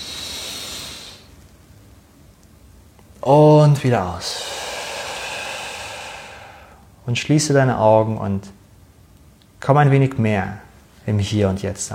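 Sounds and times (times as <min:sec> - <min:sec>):
deep inhaling breath: 0:00.0 - 0:01.3, 0:04.2 - 0:07.0
speech: 0:03.2 - 0:04.5, 0:07.1 - 0:08.6, 0:09.6 - 0:11.9.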